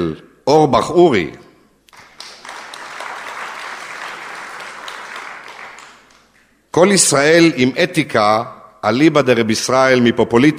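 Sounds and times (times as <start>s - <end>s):
speech: 0.0s - 1.4s, 6.8s - 10.5s
audience applause: 1.9s - 6.4s.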